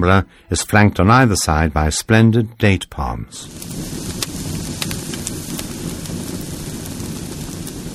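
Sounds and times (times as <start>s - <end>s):
speech: 0.0s - 4.4s
large festival bonfire crackling during the Cremada del Demoni in Badalona: 3.4s - 7.9s.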